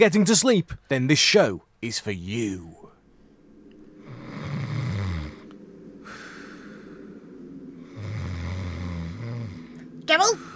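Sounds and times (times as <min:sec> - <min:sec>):
speech: 0:00.0 - 0:02.8, 0:10.1 - 0:10.5
man snoring loudly while asleep: 0:04.1 - 0:05.5, 0:08.0 - 0:09.8.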